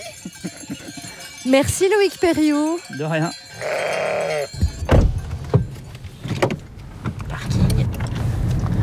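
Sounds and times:
speech: 0:01.5 - 0:04.6
ewe bleating: 0:03.5 - 0:04.6
low hum of a car engine: 0:04.5 - 0:08.8
clunks and knocks: 0:04.6 - 0:08.7.

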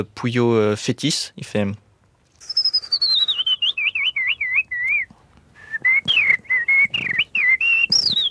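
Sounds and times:
speech: 0:00.0 - 0:01.8
person whistling an imitation of blackbird song: 0:02.4 - 0:08.2.

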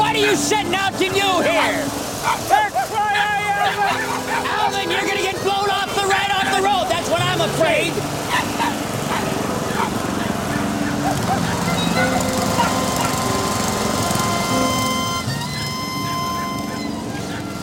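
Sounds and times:
laughter: 0:00.0 - 0:13.2, 0:15.3 - 0:17.6
riding lawn mower engine running while driven along a road: 0:00.0 - 0:17.6
speech: 0:00.2 - 0:05.6.

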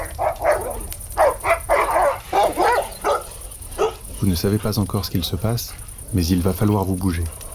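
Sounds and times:
dog growling and snarling by a campfire: 0:00.0 - 0:04.2
speech: 0:04.2 - 0:07.4.

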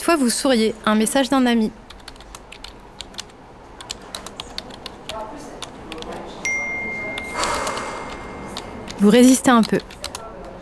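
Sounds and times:
speech: 0:00.1 - 0:01.8, 0:09.0 - 0:10.0
typing on a computer keyboard: 0:01.9 - 0:06.2, 0:07.2 - 0:10.5
steady electronic tone: 0:06.5 - 0:09.0.

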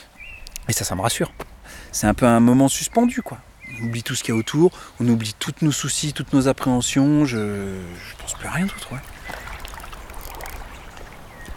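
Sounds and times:
speech: 0:00.7 - 0:09.1
flowing river water: 0:03.0 - 0:11.5.

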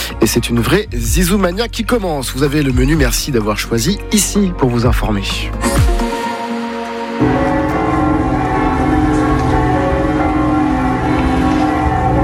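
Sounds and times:
speech: 0:00.2 - 0:05.9
village church bells pealing: 0:06.4 - 0:12.2.

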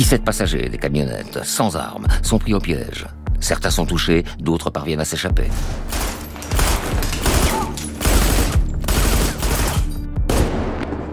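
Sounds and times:
speech: 0:00.0 - 0:06.2
automatic gunfire: 0:05.9 - 0:10.8.

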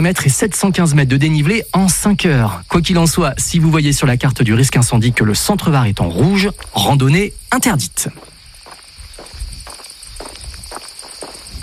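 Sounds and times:
speech: 0:00.0 - 0:08.3
cicadas buzzing in the Var France: 0:00.0 - 0:11.6
hiker's footsteps crunching along a trail in the Var France: 0:02.7 - 0:11.6.

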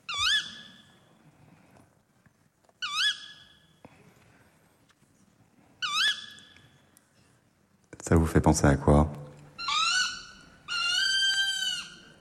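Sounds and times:
tawny owl giving shrill rising calls: 0:00.0 - 0:01.0, 0:02.8 - 0:03.7, 0:05.8 - 0:06.8, 0:09.6 - 0:12.1
speech: 0:08.1 - 0:09.2.

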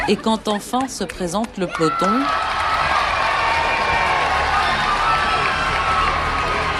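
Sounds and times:
speech: 0:00.0 - 0:02.6
roadside crowd cheering and applauding cyclists: 0:01.7 - 0:06.7.

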